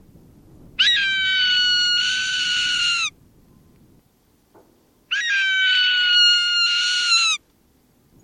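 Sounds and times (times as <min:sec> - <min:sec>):
Swainson's hawk screaming harsh cries: 0:00.8 - 0:03.1, 0:05.1 - 0:07.4.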